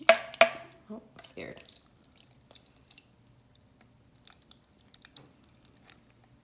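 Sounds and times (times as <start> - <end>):
speech: 0.9 - 1.8
freshly squeezed lemon juice pouring and dripping: 1.2 - 6.4.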